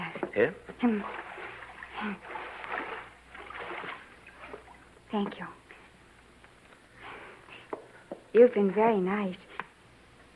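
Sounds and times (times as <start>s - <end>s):
speech: 0.4s - 1.3s, 2.0s - 2.4s, 5.1s - 5.6s, 8.4s - 9.4s
objects dropped into water splashing and sloshing: 0.8s - 4.9s.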